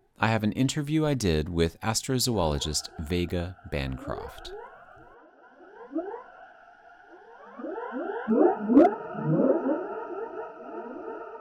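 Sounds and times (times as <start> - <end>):
speech: 0.2 - 4.6
whale-like moaning song of a space whale funeral procession: 2.6 - 11.3.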